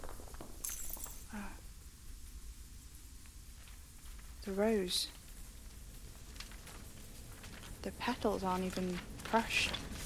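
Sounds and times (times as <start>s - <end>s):
glass shattering: 0.0s - 1.3s
speech: 4.4s - 5.2s, 7.9s - 9.9s.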